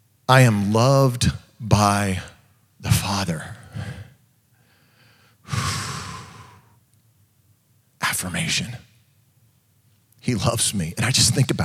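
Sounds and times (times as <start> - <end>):
speech: 0.3 - 3.6, 8.2 - 8.9, 10.2 - 11.6
deep breath in: 3.7 - 6.8.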